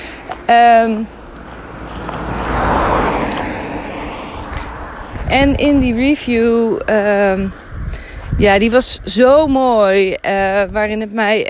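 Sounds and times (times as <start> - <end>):
car passing by: 0.0 - 8.4
road noise: 0.0 - 11.4
speech: 0.5 - 1.2, 5.3 - 7.6, 8.4 - 11.4.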